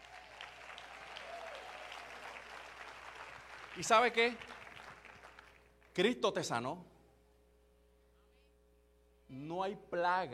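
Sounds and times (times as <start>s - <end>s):
audience applauding during a church sermon: 0.0s - 5.7s
speech: 3.8s - 4.5s, 6.0s - 6.9s, 9.3s - 10.3s.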